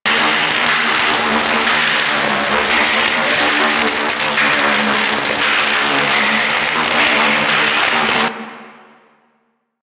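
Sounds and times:
electric hazard ambience: 0:00.0 - 0:08.4.

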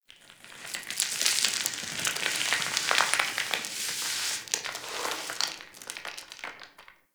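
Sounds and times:
sand one-shot sound: 0:00.7 - 0:06.2.

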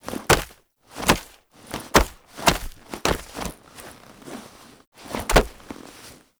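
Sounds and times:
helmet being grabbed: 0:00.1 - 0:04.0, 0:05.1 - 0:06.2.

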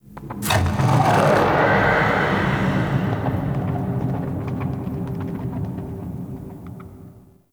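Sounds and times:
ambience: 0:00.0 - 0:07.2.

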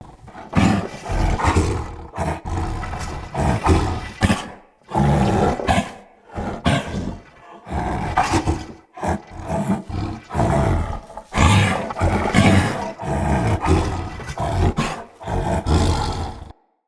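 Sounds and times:
corrupted battle dog snarling: 0:00.0 - 0:16.6.

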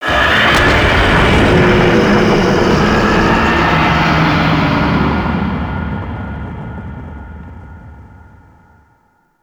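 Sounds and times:
infested hive destroy rumble in gameplay: 0:00.0 - 0:09.0.

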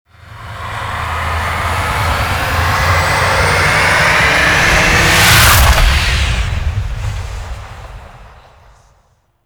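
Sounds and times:
vehicles departing on an extraction flight: 0:00.1 - 0:09.0.

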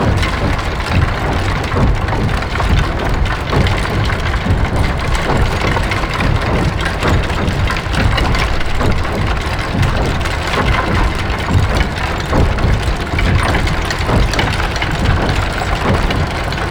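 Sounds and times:
orbital station mechanical tunnel ambience loop: 0:00.0 - 0:16.6.

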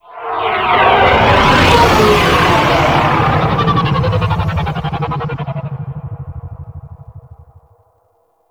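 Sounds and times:
slow fly-by: 0:00.1 - 0:07.9.

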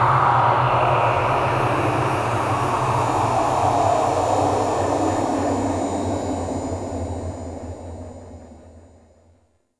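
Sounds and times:
ominous exterior void ambience: 0:00.2 - 0:08.4.

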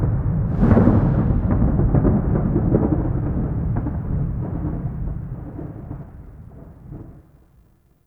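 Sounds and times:
thunder: 0:00.2 - 0:06.1.

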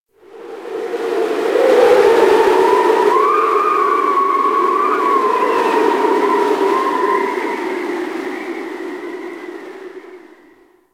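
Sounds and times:
ice cold wind whistling: 0:00.2 - 0:10.9.

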